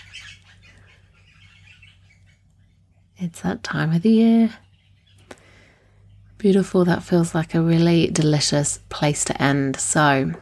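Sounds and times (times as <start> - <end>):
birds chirping outdoors: 0.0 - 10.3
low steady hum: 0.0 - 10.3
speech: 3.2 - 4.6, 6.4 - 10.3.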